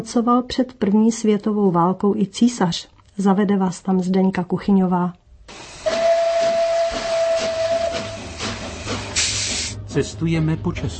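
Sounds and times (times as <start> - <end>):
speech: 0.0 - 5.7, 10.0 - 10.9
moving passenger train hissing and rumbling: 5.5 - 10.3
passenger train whistle hooting: 5.6 - 9.8.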